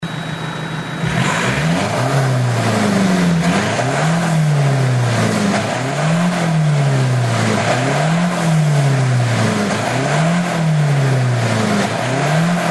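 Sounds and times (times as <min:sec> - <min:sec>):
Mazda CX3 DK SkyActiv muffler exhaust: 0:00.0 - 0:12.7.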